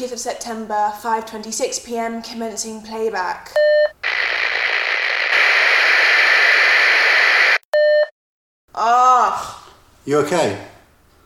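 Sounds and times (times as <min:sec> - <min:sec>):
speech: 0:00.0 - 0:04.0, 0:08.8 - 0:10.7
short electronic tone: 0:03.7 - 0:08.1
warbling radio interference: 0:04.0 - 0:07.6
loud steady radio static: 0:04.0 - 0:07.7.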